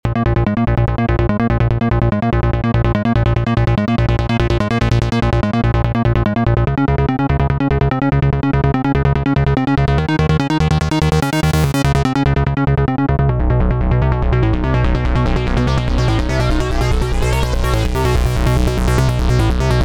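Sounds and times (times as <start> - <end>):
alien synth bass line in A minor Dorian: 0.0 - 19.8.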